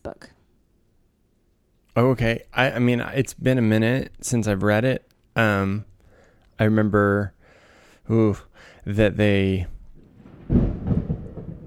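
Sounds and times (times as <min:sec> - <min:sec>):
speech: 0:02.0 - 0:05.9, 0:06.6 - 0:07.4, 0:08.1 - 0:09.7
thunder crack and deep rumble from a thunderstorm: 0:10.0 - 0:11.6.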